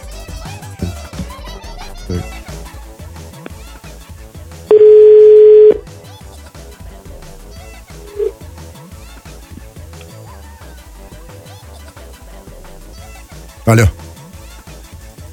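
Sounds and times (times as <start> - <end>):
busy music bed: 0.0 - 15.3
speech: 2.1 - 2.4, 13.7 - 14.0
telephone ringback tone while calling: 4.7 - 5.8, 8.1 - 8.3.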